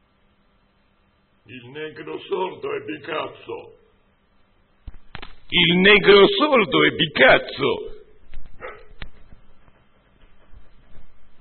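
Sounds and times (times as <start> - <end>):
low quiet noise: 0.0 - 11.3
speech: 1.5 - 3.8, 5.5 - 7.9
dog giving a short sharp bark: 8.6 - 9.1.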